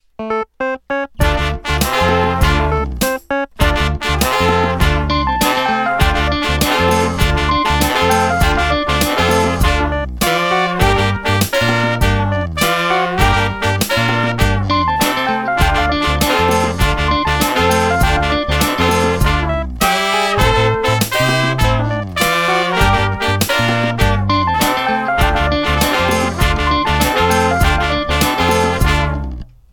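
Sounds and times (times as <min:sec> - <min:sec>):
funky horn music: 0:00.2 - 0:29.4.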